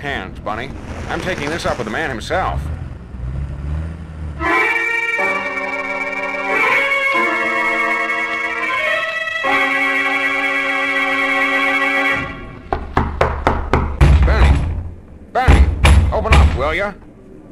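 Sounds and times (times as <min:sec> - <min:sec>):
speech: 0:00.0 - 0:02.8, 0:16.8 - 0:17.1
sustained horn-like tones: 0:04.2 - 0:12.7
knocking on a door: 0:12.7 - 0:16.6.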